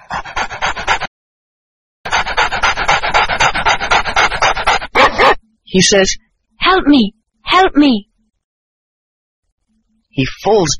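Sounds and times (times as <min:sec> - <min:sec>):
dog panting while chasing a man: 0:00.0 - 0:01.1, 0:02.1 - 0:05.4
speech: 0:05.7 - 0:08.1, 0:10.2 - 0:10.7.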